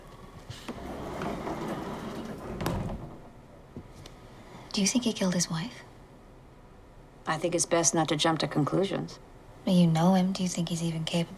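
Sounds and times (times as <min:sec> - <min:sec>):
door being pulled shut: 0:00.5 - 0:03.6
speech: 0:04.8 - 0:05.9, 0:07.3 - 0:11.3.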